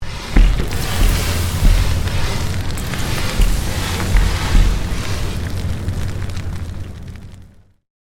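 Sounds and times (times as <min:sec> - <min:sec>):
created magic spell meteor shower sound effect: 0:00.0 - 0:07.6.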